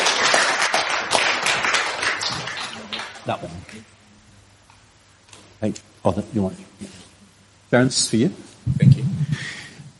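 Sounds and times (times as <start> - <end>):
audience clapping: 0.0 - 3.8
speech: 3.2 - 4.0, 5.6 - 7.1, 7.7 - 9.1.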